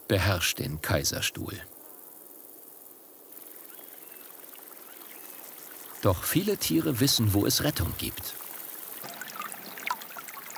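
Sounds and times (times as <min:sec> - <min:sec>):
speech: 0:00.1 - 0:01.7, 0:06.0 - 0:08.4
spring water bubbling out of rock at the foot of the Badberg in the Kaiserstuhl: 0:09.0 - 0:10.5.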